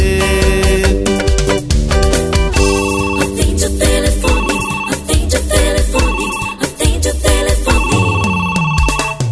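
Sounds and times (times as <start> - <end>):
loud busy music track with heavy drums and bass: 0.0 - 9.2
trilling telephone rings: 2.6 - 9.2.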